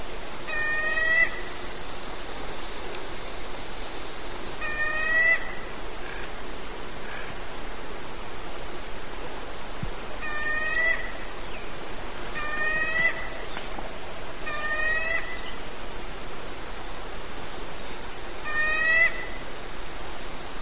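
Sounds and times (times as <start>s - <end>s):
hooded mountain toucan calling: 0.4s - 2.0s, 4.6s - 6.4s, 10.2s - 13.7s, 14.4s - 15.7s, 18.4s - 19.9s.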